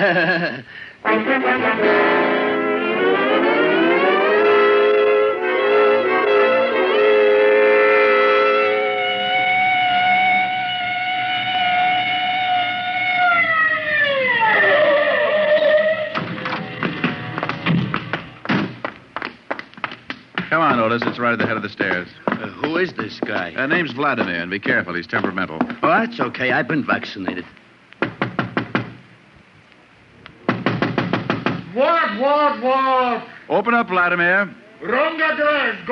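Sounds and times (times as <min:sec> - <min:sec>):
laughter: 0:00.0 - 0:00.7
speech: 0:00.0 - 0:02.5, 0:20.9 - 0:27.6, 0:32.2 - 0:35.9
police siren wailing: 0:02.3 - 0:18.0
thumps and knocks: 0:16.1 - 0:26.1, 0:28.0 - 0:29.0, 0:30.4 - 0:31.7.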